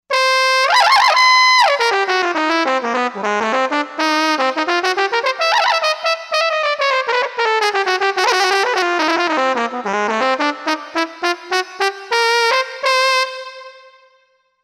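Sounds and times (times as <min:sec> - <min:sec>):
brass jazz trumpet: 0:00.1 - 0:14.2.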